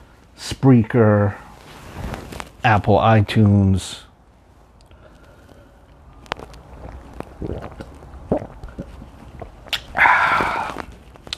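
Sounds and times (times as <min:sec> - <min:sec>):
speech: 0:00.6 - 0:01.4, 0:02.6 - 0:04.1
person gulping iced tea: 0:05.8 - 0:11.3
small mouth clicks while drinking iced tea: 0:06.1 - 0:11.3
loud breathy sigh of relief: 0:10.0 - 0:10.8.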